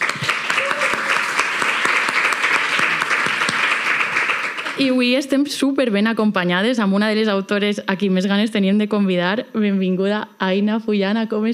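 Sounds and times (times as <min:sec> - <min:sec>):
crowd of people applauding: 0:00.0 - 0:05.0
speech: 0:04.8 - 0:11.5.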